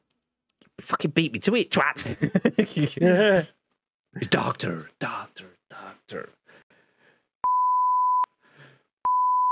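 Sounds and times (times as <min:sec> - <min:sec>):
speech: 0:00.8 - 0:06.4
censor bleeps: 0:07.4 - 0:08.3, 0:09.1 - 0:09.5.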